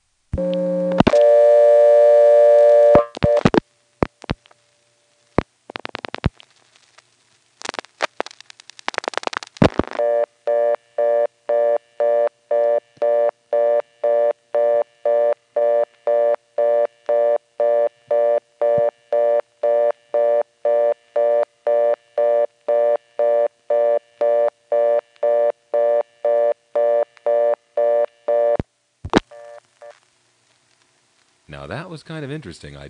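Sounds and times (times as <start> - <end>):
telephone reorder tone on a phone line: 0.4 - 3.6, 9.6 - 30.0
speech: 32.0 - 32.8.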